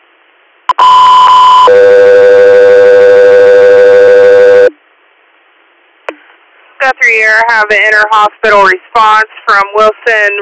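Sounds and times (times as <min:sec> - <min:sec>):
dispatch alert tones ahead of a medical flight call: 0:00.7 - 0:04.8
speech: 0:07.1 - 0:10.4.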